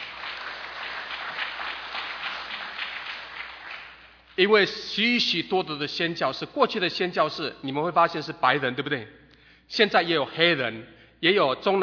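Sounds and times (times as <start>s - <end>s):
large group applauding: 0.0s - 4.4s
speech: 4.4s - 11.8s.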